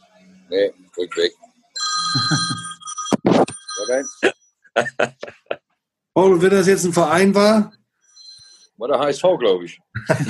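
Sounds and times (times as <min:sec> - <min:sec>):
speech: 0:00.5 - 0:01.5, 0:03.9 - 0:05.4, 0:06.2 - 0:07.8, 0:08.8 - 0:10.2
telephone ringing with an electronic bell tone: 0:01.8 - 0:04.3
laughter: 0:02.1 - 0:02.6, 0:04.8 - 0:05.6, 0:09.9 - 0:10.2.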